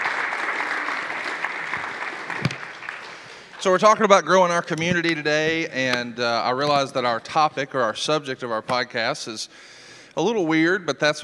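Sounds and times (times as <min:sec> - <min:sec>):
audience clapping: 0:00.0 - 0:04.3
speech: 0:03.6 - 0:11.2.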